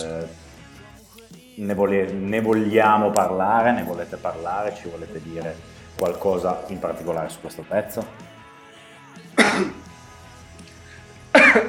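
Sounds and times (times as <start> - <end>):
speech: 1.6 - 8.3
person coughing: 9.4 - 9.8, 11.4 - 11.6.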